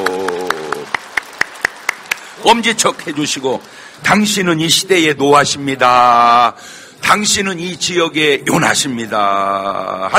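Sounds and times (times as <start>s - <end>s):
church congregation rhythmic clapping during a worship service: 0.0s - 4.9s
speech: 2.4s - 10.1s.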